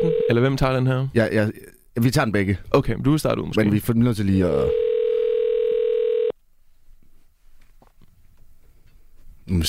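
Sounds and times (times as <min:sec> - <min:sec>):
telephone ringback tone while waiting for customer service to answer: 0:00.0 - 0:00.4, 0:04.6 - 0:06.3
speech: 0:00.3 - 0:04.8, 0:09.5 - 0:09.6.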